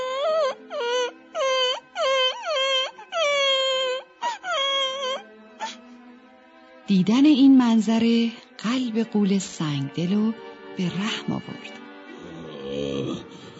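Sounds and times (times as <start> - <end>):
young boy bursting into tears wailing: 0.0 - 5.8
speech: 6.9 - 11.8, 12.6 - 13.5.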